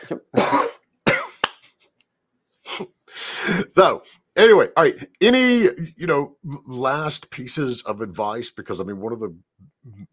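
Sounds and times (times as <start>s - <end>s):
speech: 0.1s - 0.7s, 2.8s - 10.1s
person coughing: 0.1s - 1.4s.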